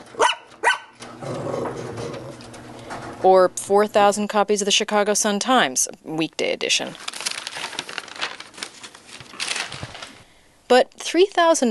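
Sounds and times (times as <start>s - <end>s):
low hum: 0.0s - 11.6s
pedigreed labradoodle puppy barking: 0.1s - 1.0s
speech: 3.2s - 7.1s, 10.7s - 11.6s.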